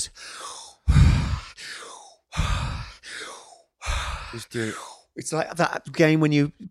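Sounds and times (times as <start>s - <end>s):
deep forceful breathing during a breathing exercise: 0.0s - 5.1s
speech: 4.3s - 6.6s.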